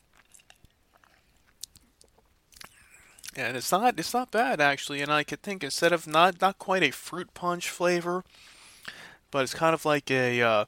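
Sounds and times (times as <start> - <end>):
wet mouth clicks and smacks while sipping a malt beverage: 0.1 - 3.4
speech: 3.4 - 10.6.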